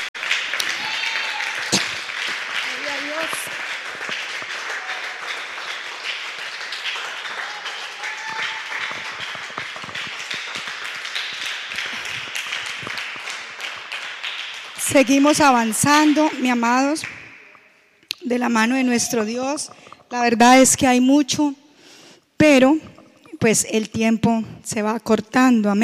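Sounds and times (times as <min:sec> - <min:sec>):
crowd applauding: 0:00.0 - 0:17.5
speech: 0:14.9 - 0:17.2, 0:18.3 - 0:21.6, 0:22.4 - 0:22.8, 0:23.4 - 0:25.8.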